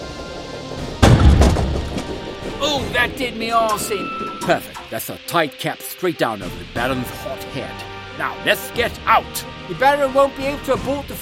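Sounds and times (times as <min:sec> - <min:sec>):
loud sustained low rumble: 0:00.0 - 0:05.0
airship dropped onto a gun port with a heavy booming crash: 0:00.8 - 0:05.0
speech: 0:02.8 - 0:11.2.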